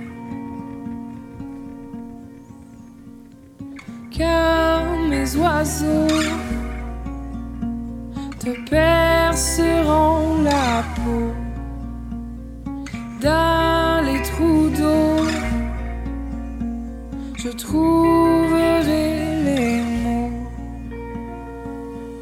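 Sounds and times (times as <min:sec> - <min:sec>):
woman singing a French-language song: 0:04.1 - 0:07.1, 0:08.2 - 0:12.1, 0:13.0 - 0:16.5, 0:17.3 - 0:21.1
speech: 0:05.3 - 0:06.5.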